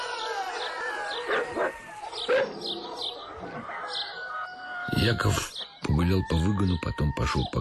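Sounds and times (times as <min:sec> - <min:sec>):
several dogs barking loudly: 0:00.0 - 0:04.2
birds chirping and twittering: 0:00.0 - 0:07.5
speech: 0:05.0 - 0:07.5.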